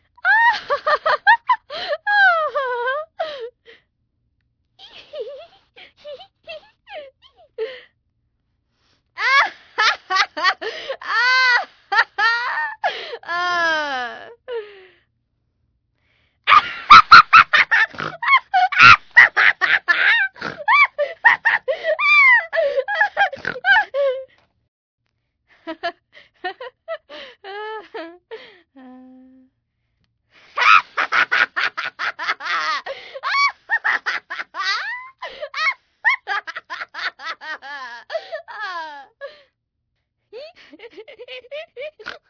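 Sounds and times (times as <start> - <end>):
girl laughing: 0.2 - 3.5, 4.8 - 7.8, 9.2 - 14.6, 16.5 - 24.3, 25.7 - 28.5, 30.6 - 39.4, 40.4 - 42.2.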